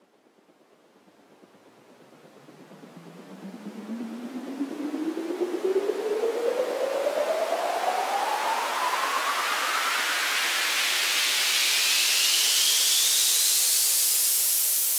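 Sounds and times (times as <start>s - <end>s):
rising air white noise effect for house music: 3.0s - 14.9s.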